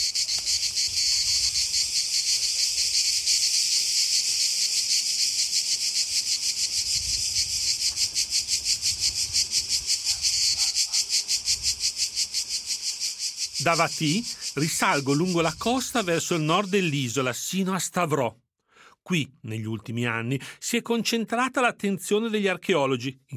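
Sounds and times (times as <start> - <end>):
cicadas chirring at midday on a hot summer day on Ithaca: 0.0 - 17.3
speech: 13.6 - 18.4, 19.1 - 23.3.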